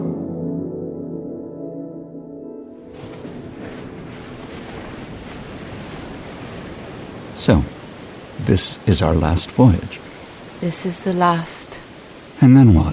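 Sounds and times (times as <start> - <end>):
ocean waves breaking on a beach below a castle: 2.7 - 12.9
speech: 7.4 - 7.8, 8.4 - 11.8, 12.4 - 12.9.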